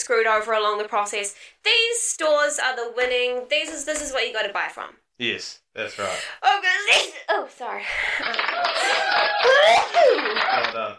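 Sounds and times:
speech: 0.0 - 10.9
crowd applause effect from a soundboard: 8.0 - 10.9
cheering voices: 8.5 - 10.9.

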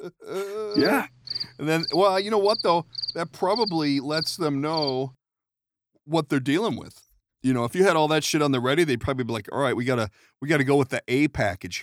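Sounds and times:
speech: 0.0 - 5.2, 6.1 - 11.8
crickets chirping: 0.7 - 5.1.

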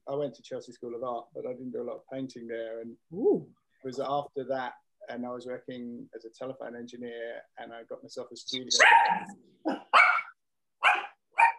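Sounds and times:
speech: 0.1 - 10.0
dog barking: 8.8 - 11.5.

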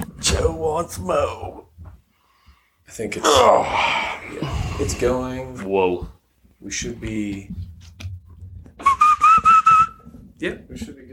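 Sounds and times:
speech: 0.4 - 1.7, 2.9 - 8.0, 10.4 - 11.0
person whistling a short tune: 8.8 - 10.0.

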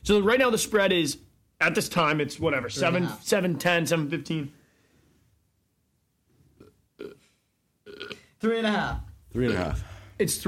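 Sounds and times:
speech: 0.0 - 4.6, 8.4 - 10.4
person burping after drinking beer: 6.6 - 8.4.

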